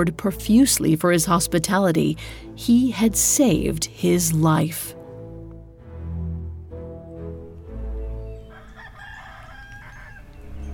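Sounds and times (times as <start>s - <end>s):
speech: 0.0s - 5.0s
rooster crowing: 8.3s - 10.7s.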